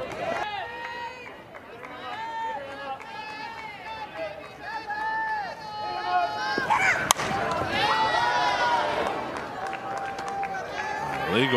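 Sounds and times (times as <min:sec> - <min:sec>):
crowd noise at a softball game: 0:00.0 - 0:11.5
softball bat slapping the ball in a slap hit during a softball game: 0:06.5 - 0:08.0.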